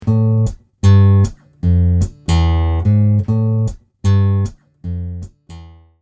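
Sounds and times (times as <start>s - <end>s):
bass line: 0.0s - 5.3s.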